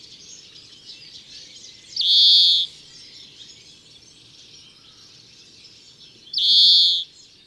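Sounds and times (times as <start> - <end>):
greenfinch giving nasal buzzy calls: 6.4 - 7.0.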